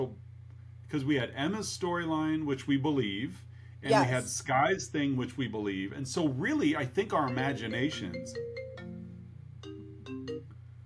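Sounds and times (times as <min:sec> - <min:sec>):
speech: 0:00.0 - 0:00.2, 0:00.9 - 0:08.6
steady low hum: 0:00.0 - 0:10.8
phone ringtone from an incoming call: 0:07.2 - 0:10.5.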